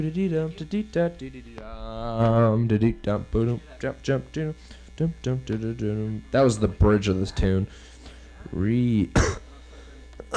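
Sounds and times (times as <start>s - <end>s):
speech: 0.0s - 9.4s
sustained voiced tone: 0.2s - 6.4s
single sharp cough: 9.2s - 9.5s.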